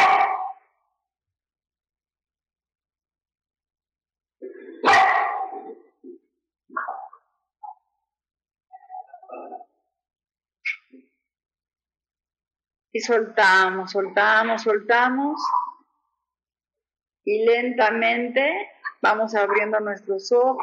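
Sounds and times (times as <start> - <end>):
dogs barking: 0.0 - 0.6, 4.8 - 5.8
speech: 13.0 - 15.6, 17.2 - 20.6.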